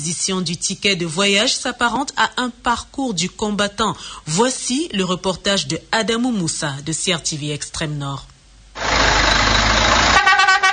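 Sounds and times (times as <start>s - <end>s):
speech: 0.0s - 8.3s
car horns honking at a busy bus travel agency: 8.8s - 10.7s
roar of engines and traffic: 8.8s - 10.7s.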